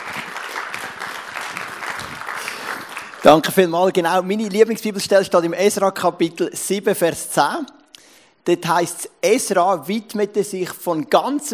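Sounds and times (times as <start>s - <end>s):
audience applause: 0.0s - 3.5s
speech: 3.3s - 7.8s, 8.4s - 11.5s.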